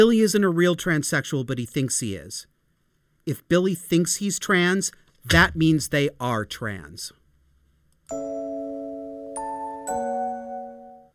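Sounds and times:
speech: 0:00.0 - 0:02.5, 0:03.2 - 0:07.2, 0:08.1 - 0:08.4
rising chime tones: 0:08.1 - 0:11.1.

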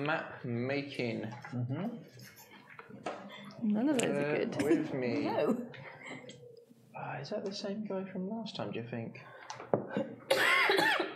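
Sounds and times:
speech: 0:00.0 - 0:02.4, 0:03.0 - 0:06.2, 0:07.0 - 0:10.2
person coughing harshly: 0:09.9 - 0:11.1.

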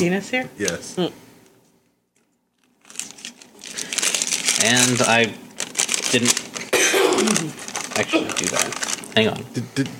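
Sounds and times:
speech: 0:00.0 - 0:01.2, 0:04.6 - 0:05.4, 0:06.1 - 0:06.4, 0:07.2 - 0:09.9
crinkly paper rustling: 0:02.6 - 0:09.3.

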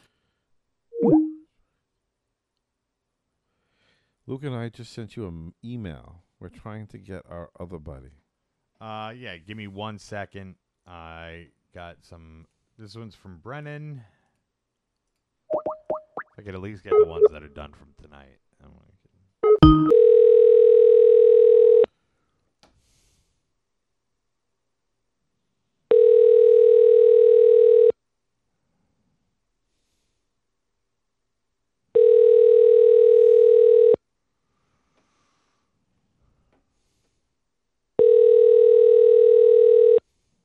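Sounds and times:
ringback tone of an outgoing phone call: 0:01.0 - 0:01.4, 0:19.4 - 0:21.9, 0:25.9 - 0:27.9, 0:32.0 - 0:34.0, 0:38.0 - 0:40.0
speech: 0:04.3 - 0:08.2, 0:08.8 - 0:14.2, 0:16.4 - 0:18.9.

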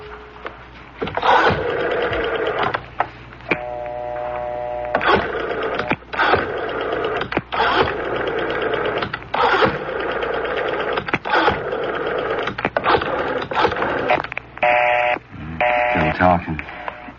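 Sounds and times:
office extension telephone dial whirring: 0:01.2 - 0:02.8, 0:03.5 - 0:15.1
brief steady telephone tone: 0:03.5 - 0:05.1, 0:14.7 - 0:17.1.

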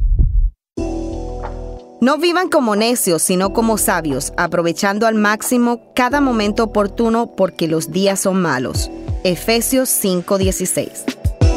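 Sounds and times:
deep heartbeat thumping: 0:00.0 - 0:00.6, 0:08.8 - 0:09.3, 0:11.2 - 0:11.5
speech: 0:02.0 - 0:11.2.

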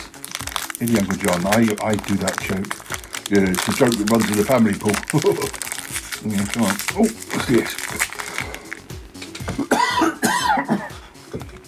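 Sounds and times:
speech: 0:00.8 - 0:08.2, 0:09.6 - 0:10.2
harsh rasping coughs: 0:09.4 - 0:11.5.

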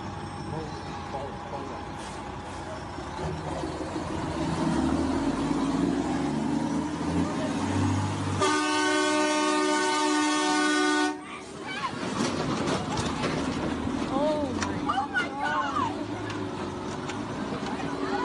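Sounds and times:
heavy livestock truck engine rumbling: 0:00.0 - 0:18.2
livestock truck horn blast: 0:08.4 - 0:11.3.

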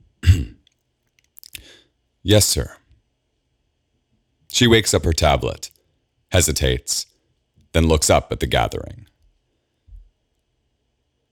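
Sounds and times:
person coughing: 0:00.2 - 0:00.6
speech: 0:02.2 - 0:02.8, 0:04.6 - 0:05.7, 0:06.3 - 0:07.1, 0:07.7 - 0:09.1.

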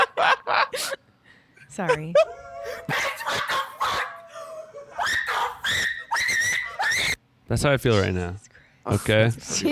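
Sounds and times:
speech: 0:01.8 - 0:02.4, 0:07.5 - 0:09.7
screaming sound effect of shrill high-pitched shrieks: 0:02.2 - 0:07.2.

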